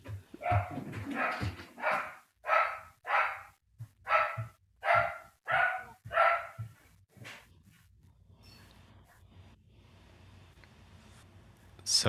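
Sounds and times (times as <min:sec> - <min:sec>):
pet dog barking: 0:00.4 - 0:06.8.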